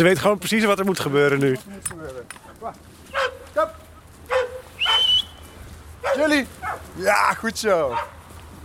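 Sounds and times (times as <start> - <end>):
speech: 0.0 - 3.7, 6.2 - 8.2
police search dog barking excitedly: 3.1 - 5.1, 6.0 - 6.9, 7.9 - 8.2.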